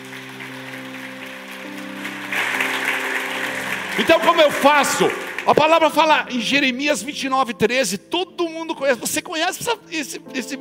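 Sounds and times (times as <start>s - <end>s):
church service audience applauding: 0.0s - 6.5s
speech: 4.0s - 10.5s.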